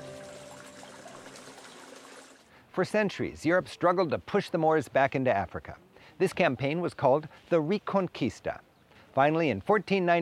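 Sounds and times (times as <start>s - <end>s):
water splashing in a fountain at the Alhambra: 0.0s - 2.5s
speech: 2.8s - 10.2s.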